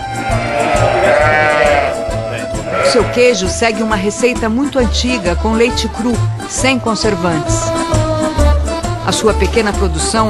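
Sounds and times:
endangered Langa sheep bleating: 0:00.0 - 0:03.8
speech: 0:03.0 - 0:08.0, 0:09.1 - 0:10.2.

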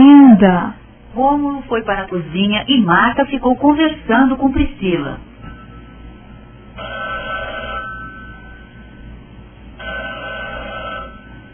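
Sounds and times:
speech: 0:00.4 - 0:05.3
telephone ringing in a home: 0:06.8 - 0:08.9, 0:09.8 - 0:11.5.

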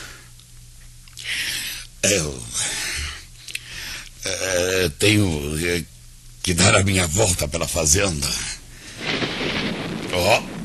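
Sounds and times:
rain-like hiss: 0:00.0 - 0:04.3, 0:04.9 - 0:10.6
speech: 0:02.0 - 0:02.6, 0:04.2 - 0:08.6, 0:10.2 - 0:10.5
distant thunder rumbling: 0:09.0 - 0:10.6.

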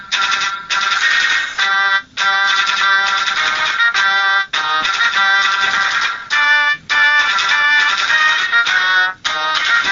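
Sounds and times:
MIDI mobile phone ringtone for an incoming call: 0:00.1 - 0:09.9.

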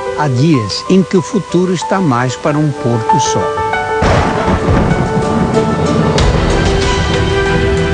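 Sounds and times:
speech: 0:00.2 - 0:03.6
deep rolling thunder: 0:03.9 - 0:07.9.

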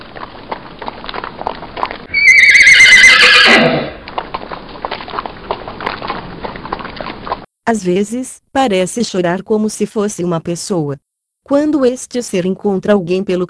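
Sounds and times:
horse hooves galloping: 0:00.0 - 0:07.5
horse whinnying: 0:02.0 - 0:04.1
speech: 0:07.7 - 0:13.4.

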